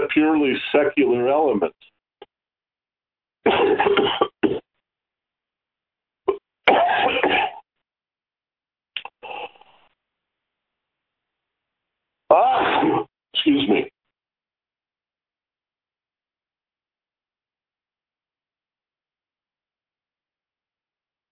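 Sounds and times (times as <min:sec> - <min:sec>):
speech: 0:00.2 - 0:01.9, 0:12.3 - 0:13.9
abrupt explosive sneezes: 0:03.5 - 0:04.6, 0:06.7 - 0:07.6, 0:12.3 - 0:13.1.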